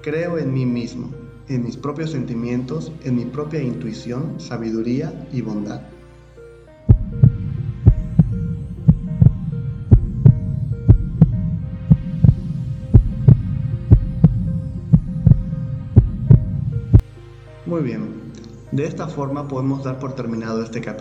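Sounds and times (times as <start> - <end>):
speech: 0.0 - 5.9, 17.8 - 20.9
heartbeat thumping: 6.9 - 17.0.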